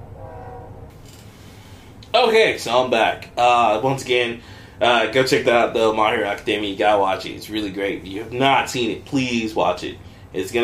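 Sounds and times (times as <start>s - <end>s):
train horn blaring in stacked tones: 0.0s - 1.0s
passing train rumbling: 0.0s - 1.2s
hiss of rolling wheels and rattling train cars: 0.0s - 1.4s
speech: 2.2s - 10.6s.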